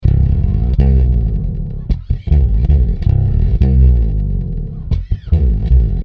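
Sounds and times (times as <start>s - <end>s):
bass slide: 0.0s - 6.0s.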